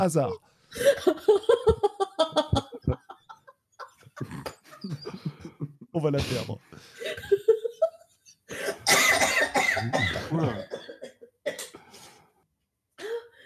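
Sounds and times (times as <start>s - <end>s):
speech: 0.0s - 2.3s, 6.0s - 6.6s
laughter: 0.8s - 5.8s
person coughing harshly in a coughing fit: 8.6s - 11.9s.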